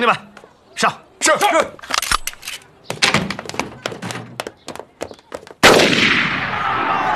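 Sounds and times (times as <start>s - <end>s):
speech: 0.0s - 1.9s
sharp gunshots: 5.6s - 6.7s
loud blast: 5.6s - 7.0s.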